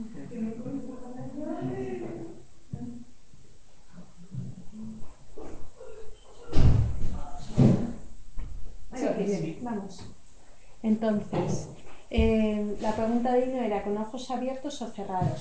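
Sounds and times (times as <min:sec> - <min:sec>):
voices murmuring: 0:00.0 - 0:03.0
door opening and closing: 0:06.4 - 0:07.9
speech: 0:09.7 - 0:10.2, 0:10.8 - 0:15.3.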